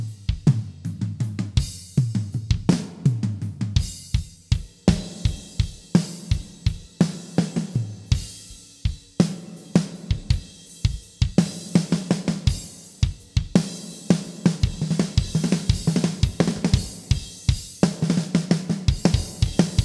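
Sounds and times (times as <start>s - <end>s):
gated drum: 0.2s - 19.8s.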